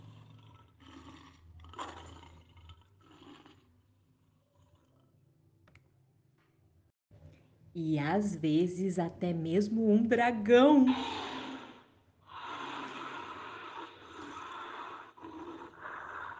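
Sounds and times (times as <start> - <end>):
lion roaring: 0.0 - 3.6, 10.9 - 16.3
speech: 7.8 - 11.3.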